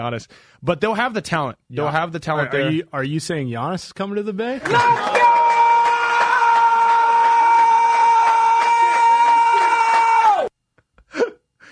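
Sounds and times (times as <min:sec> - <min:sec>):
speech: 0:00.0 - 0:05.4
man screaming: 0:04.7 - 0:10.5.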